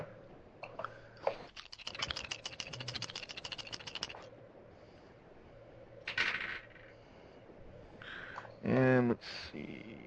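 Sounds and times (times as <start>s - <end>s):
dice rattling across a hard tabletop in a tabletop role-playing game: 1.6s - 4.2s
speech: 8.7s - 10.0s.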